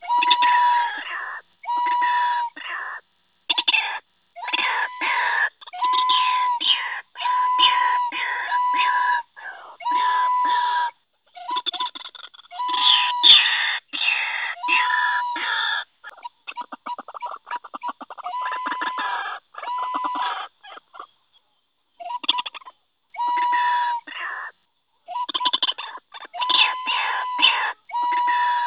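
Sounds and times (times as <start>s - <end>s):
ruak-ruak bird call for luring: 0.0s - 21.2s, 21.9s - 28.6s.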